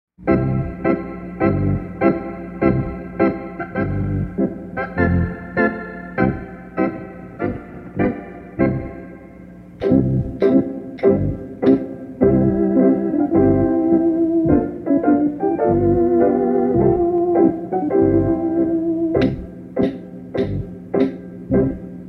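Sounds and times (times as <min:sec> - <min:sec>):
happy dance instrumental music: 0:00.2 - 0:22.0
hand claps: 0:09.8 - 0:11.9, 0:19.2 - 0:21.2.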